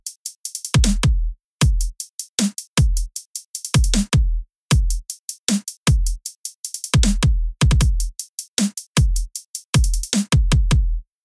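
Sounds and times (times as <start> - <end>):
future bass rhythm snare drum: 0.7 - 1.1, 1.8 - 4.2, 4.9 - 10.8.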